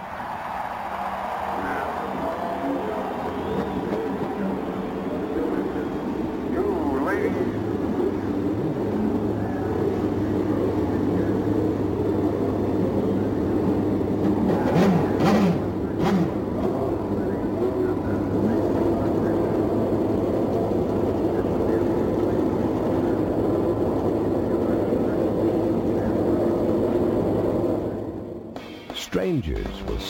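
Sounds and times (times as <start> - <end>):
several powerful race car engines roaring: 0.0 - 30.0
race car engine revving: 7.5 - 19.3
speech: 29.2 - 30.0.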